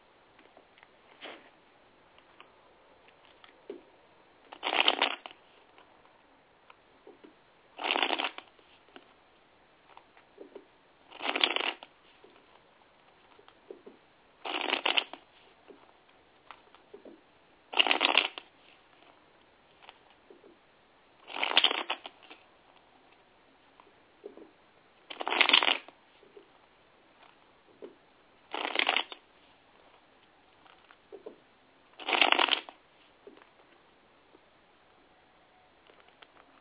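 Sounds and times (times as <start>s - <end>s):
tarot cards being shuffled for a tarot reading: 4.5s - 5.9s, 7.1s - 9.1s, 9.9s - 12.5s, 13.1s - 15.9s, 17.8s - 19.1s, 21.2s - 22.4s, 25.1s - 26.0s, 27.2s - 29.2s, 32.0s - 33.5s.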